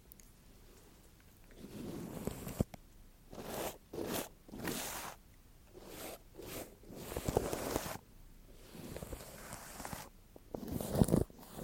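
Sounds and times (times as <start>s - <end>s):
scratchy rubbing against a microphone: 1.6s - 2.7s, 3.3s - 8.0s, 8.6s - 11.6s.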